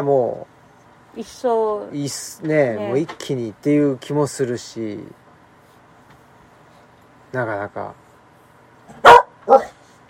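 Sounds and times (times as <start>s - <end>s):
speech: 0.0s - 0.5s, 1.2s - 5.2s, 7.3s - 8.0s
dog barking: 8.9s - 9.8s.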